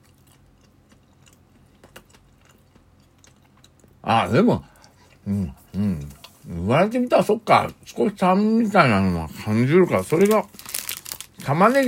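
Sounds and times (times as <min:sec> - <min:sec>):
chewing food while eating a dish with a slight sour taste: 0:00.0 - 0:06.4
speech: 0:04.1 - 0:04.7, 0:05.3 - 0:06.1, 0:06.7 - 0:10.6, 0:11.5 - 0:11.8.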